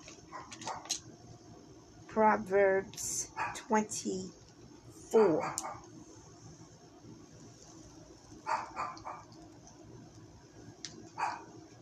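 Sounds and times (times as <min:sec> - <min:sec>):
low steady hum: 0:00.0 - 0:11.7
speech: 0:02.2 - 0:04.4, 0:05.1 - 0:05.9
excited female dog barking: 0:03.4 - 0:03.7, 0:05.2 - 0:05.9, 0:08.4 - 0:09.4, 0:11.2 - 0:11.5.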